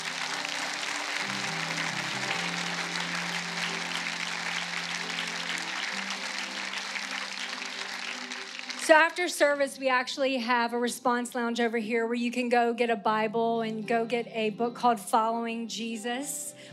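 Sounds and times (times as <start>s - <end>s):
sustained organ or keyboard chord: 0.0s - 8.5s
large crowd applauding: 0.0s - 9.3s
speech: 8.9s - 16.7s.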